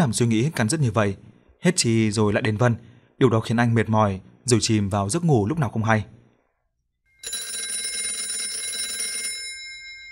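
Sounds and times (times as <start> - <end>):
speech: 0.0 - 6.2
alarm clock ringing in the morning: 7.1 - 10.0.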